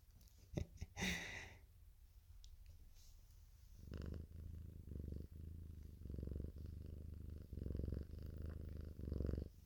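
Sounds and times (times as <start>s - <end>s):
rustling as a cat is petted: 2.2s - 9.6s
female cat purring: 3.0s - 9.6s.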